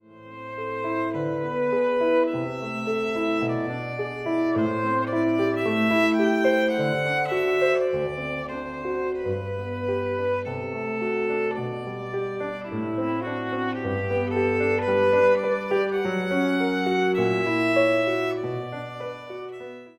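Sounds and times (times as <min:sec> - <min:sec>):
violin: 0:00.0 - 0:19.9.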